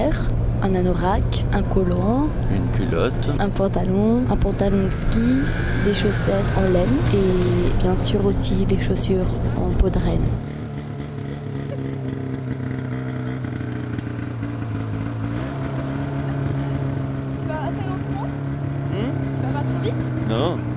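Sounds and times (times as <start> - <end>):
snowmobile engine accelerating across snow: 0.0 - 20.7
speech: 0.6 - 10.5
brief higher chirps: 2.4 - 9.6.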